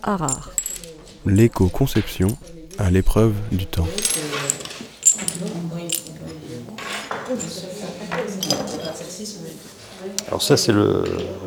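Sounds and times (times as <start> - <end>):
speech: 0.0 - 0.6, 1.2 - 4.5, 7.3 - 11.4
ancient Italian ceramic tableware pieces clinking as handled in a laboratory: 0.0 - 9.1
voices murmuring in a laboratory: 0.0 - 11.4.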